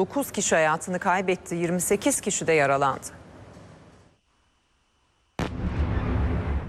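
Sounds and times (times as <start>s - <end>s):
speech: 0.0s - 3.2s
explosion during a night missile and drone attack: 5.4s - 6.6s.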